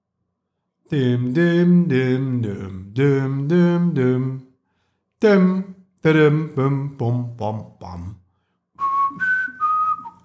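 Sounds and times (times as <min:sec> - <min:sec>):
speech: 0:00.9 - 0:04.3, 0:05.2 - 0:08.2
person whistling a short melody: 0:08.8 - 0:10.2.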